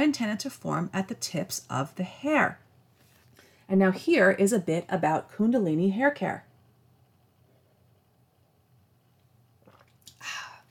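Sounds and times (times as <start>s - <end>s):
speech: 0.0s - 2.6s, 3.7s - 6.5s
short wet slurp of goat kefir: 9.6s - 10.6s
soft mouth sounds while sipping goat kefir: 9.6s - 10.6s.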